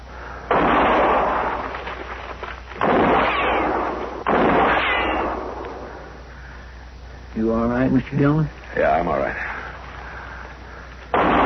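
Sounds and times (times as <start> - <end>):
gunshots fired in a western radio drama in brush: 0.5 - 2.1, 2.8 - 6.1, 11.1 - 11.4
speech: 7.5 - 9.5.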